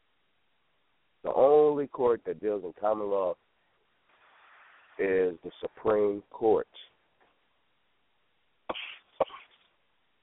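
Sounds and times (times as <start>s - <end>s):
speech: 1.3s - 3.5s, 5.0s - 6.9s
sharp raspy coughs: 8.7s - 9.7s.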